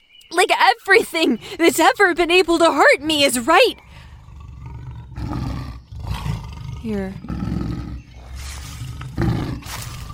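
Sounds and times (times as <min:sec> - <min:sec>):
speech: 0:00.4 - 0:03.9, 0:06.8 - 0:07.4
lion roaring: 0:03.8 - 0:10.1.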